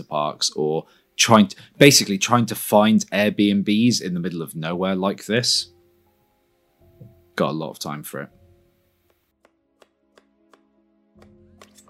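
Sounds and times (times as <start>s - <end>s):
speech: 0.0s - 5.7s, 7.4s - 8.4s
knife chopping carrots on a board: 9.4s - 11.8s.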